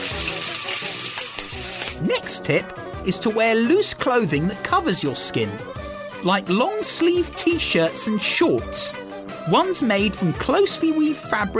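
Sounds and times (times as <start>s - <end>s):
food sizzling on a barbecue grill: 0.0s - 2.5s
speech: 2.0s - 11.5s.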